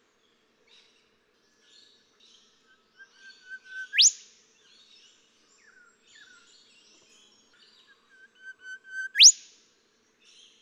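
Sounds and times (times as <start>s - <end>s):
golden whistler song with whip-crack note: 3.2s - 4.2s, 8.0s - 9.4s.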